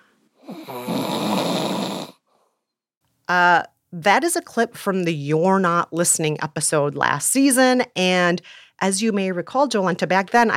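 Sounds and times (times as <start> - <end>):
man snoring loudly: 0.4 - 2.3
speech: 0.6 - 0.9, 3.3 - 10.5.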